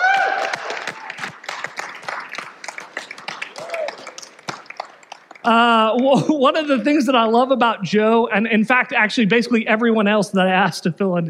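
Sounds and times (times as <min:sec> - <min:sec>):
audience applauding: 0:00.0 - 0:06.0
speech: 0:05.4 - 0:11.2.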